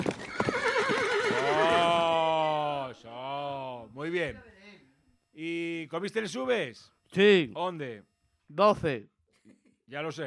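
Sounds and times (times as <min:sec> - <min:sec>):
restless horses kept in neighing: 0:00.0 - 0:02.9
speech: 0:04.1 - 0:04.5, 0:05.4 - 0:10.2.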